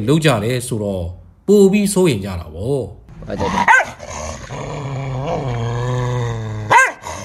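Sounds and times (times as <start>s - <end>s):
speech: 0.0s - 3.8s
dog low growling whine: 3.4s - 7.2s
dog barking: 3.6s - 4.0s, 6.7s - 7.2s.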